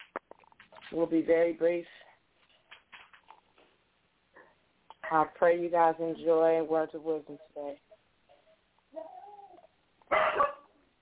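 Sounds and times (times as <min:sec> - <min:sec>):
speech: 0:00.9 - 0:02.1, 0:05.1 - 0:07.9
puppy whining: 0:08.3 - 0:10.6
puppy barking: 0:10.1 - 0:10.7.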